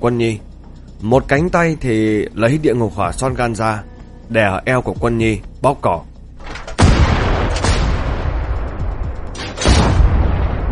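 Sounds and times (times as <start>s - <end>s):
speech: 0.0s - 6.1s
dense rumbling background: 0.0s - 10.7s
gunshots: 6.4s - 8.4s, 9.3s - 10.7s.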